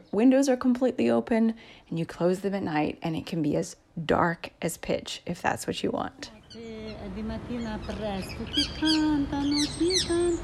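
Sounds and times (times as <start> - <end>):
speech: 0.0 - 10.4
bird song: 6.3 - 10.4.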